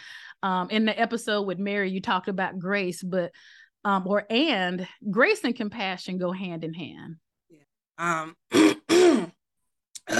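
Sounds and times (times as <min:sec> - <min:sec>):
speech: 0:00.4 - 0:09.2
throat clearing: 0:08.5 - 0:09.4.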